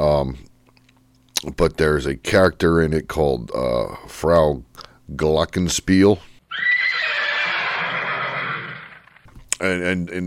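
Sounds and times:
speech: 0:00.0 - 0:00.5, 0:01.4 - 0:06.7, 0:09.6 - 0:10.2
horse whinnying: 0:06.5 - 0:09.2.

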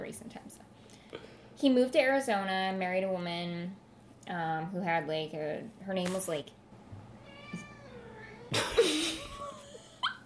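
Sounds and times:
speech: 0:01.6 - 0:06.6
cat meowing: 0:07.2 - 0:09.6.

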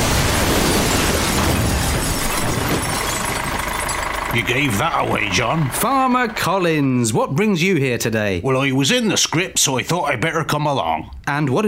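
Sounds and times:
tractor crashing through a wall: 0:00.0 - 0:05.8
speech: 0:04.4 - 0:11.6.

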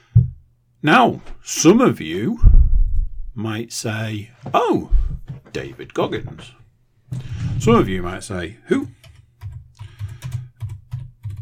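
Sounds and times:
speech: 0:00.8 - 0:02.6, 0:03.4 - 0:09.0
typing on a computer keyboard: 0:08.8 - 0:11.3.

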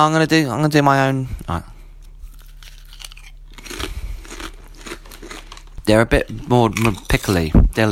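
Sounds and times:
speech: 0:00.0 - 0:01.7, 0:05.9 - 0:07.8
potato chips being bitten and chewed: 0:01.3 - 0:07.8.

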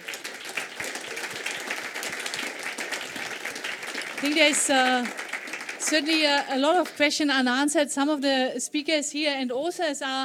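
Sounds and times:
sharp individual claps: 0:00.0 - 0:07.0
audience applause: 0:00.0 - 0:07.2
speech: 0:04.2 - 0:05.2, 0:05.8 - 0:10.2.

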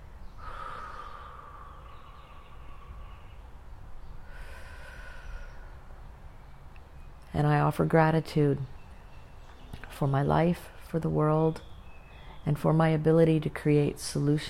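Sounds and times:
deep breath in and out: 0:00.2 - 0:06.1
speech: 0:07.4 - 0:08.8, 0:10.0 - 0:11.7, 0:12.4 - 0:14.4.

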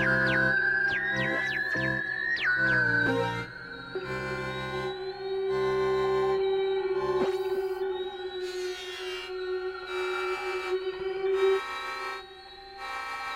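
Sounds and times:
radio-like noise: 0:00.0 - 0:03.9
rising synth chirps and sliding pitches: 0:00.0 - 0:05.9
shimmering high tones: 0:00.0 - 0:12.8
steady mid-pitched synth drone: 0:00.0 - 0:12.8.

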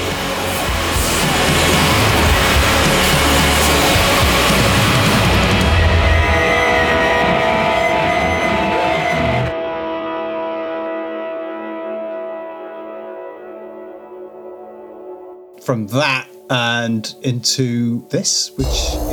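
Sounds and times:
music smothered in white noise: 0:00.0 - 0:19.1
speech: 0:15.7 - 0:19.1.

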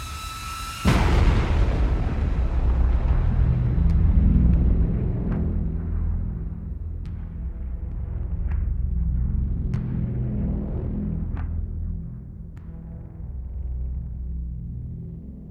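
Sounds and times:
sudden booming blast: 0:00.0 - 0:06.6
long heavy rumble: 0:00.0 - 0:14.7.

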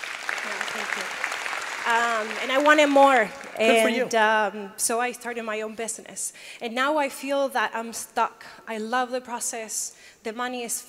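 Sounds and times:
crowd applauding with dense clapping: 0:00.0 - 0:04.2
speech: 0:00.8 - 0:10.8.

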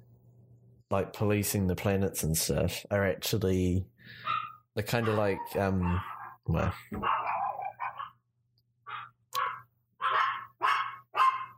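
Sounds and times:
speech: 0:00.9 - 0:07.2
dogs barking outside a door: 0:04.2 - 0:08.3, 0:08.9 - 0:11.5.

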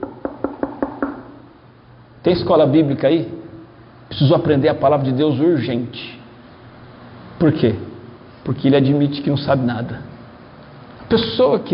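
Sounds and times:
knocking on a wooden door: 0:00.0 - 0:01.3
speech: 0:02.2 - 0:03.4, 0:04.2 - 0:06.2, 0:07.4 - 0:10.1, 0:11.1 - 0:11.7.

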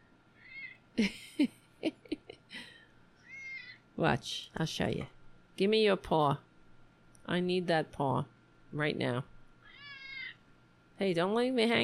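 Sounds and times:
domestic cat making chirpy meows: 0:00.4 - 0:00.8, 0:03.2 - 0:03.8, 0:09.6 - 0:10.4
speech: 0:01.0 - 0:01.6, 0:04.0 - 0:06.5, 0:07.3 - 0:09.3, 0:11.0 - 0:11.8.

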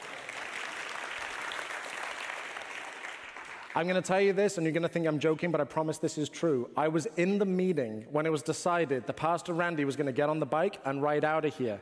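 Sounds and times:
crowd applauding: 0:00.0 - 0:04.0
speech: 0:03.8 - 0:11.8.

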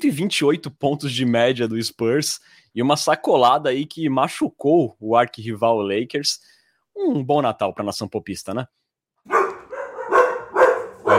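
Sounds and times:
speech: 0:00.0 - 0:08.8
dog barking: 0:09.3 - 0:11.1.

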